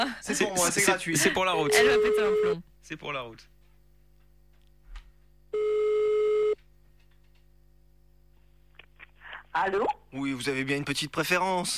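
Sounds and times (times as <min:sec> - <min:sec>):
speech: 0:00.0 - 0:03.6, 0:09.6 - 0:11.7
telephone line tone while calling someone back: 0:01.7 - 0:02.6, 0:05.6 - 0:06.6.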